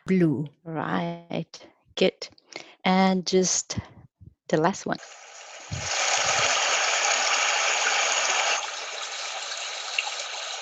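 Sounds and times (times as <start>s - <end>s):
speech: 0.1s - 6.4s
rushing water like a flowing river: 5.0s - 10.5s.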